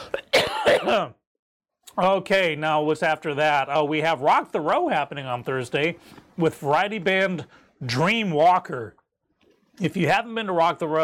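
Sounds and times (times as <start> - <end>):
harsh raspy cough: 0.0 - 1.2
speech: 0.8 - 1.2, 2.0 - 9.0, 9.8 - 11.0.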